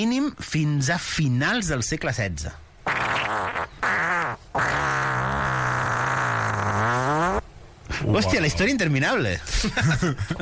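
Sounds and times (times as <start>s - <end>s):
speech: 0.0s - 2.7s, 8.0s - 10.4s
long drawn-out buzzing fart: 2.8s - 7.4s
laughter: 9.5s - 10.4s.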